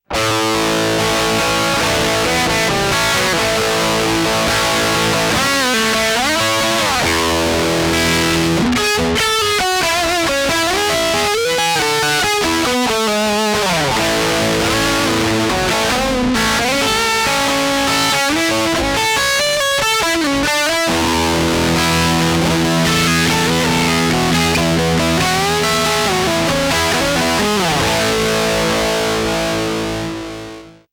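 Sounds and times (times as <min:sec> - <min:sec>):
guitar lead through an overdrive pedal: 0:00.0 - 0:30.9.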